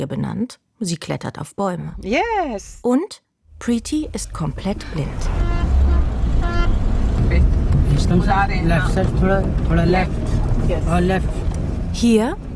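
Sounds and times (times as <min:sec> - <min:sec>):
speech: 0:00.0 - 0:05.4, 0:07.3 - 0:12.5
car engine rumbling: 0:01.9 - 0:02.8, 0:03.5 - 0:12.5.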